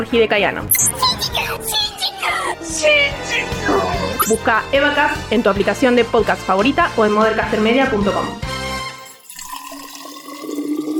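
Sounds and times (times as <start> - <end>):
speech: 0.0 - 8.5
water poured into a mate gourd with fresh yerba: 9.0 - 10.9.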